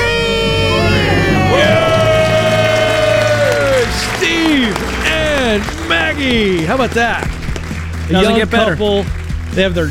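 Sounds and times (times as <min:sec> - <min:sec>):
two people cheering and screaming in celebration: 0:00.0 - 0:07.5
crowd murmuring: 0:00.2 - 0:08.8
speech: 0:05.6 - 0:07.3, 0:08.1 - 0:09.8.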